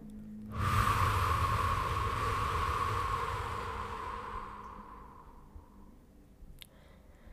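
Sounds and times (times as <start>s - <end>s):
forceful exhalation during a guided relaxation breathing exercise: 0.6s - 5.8s.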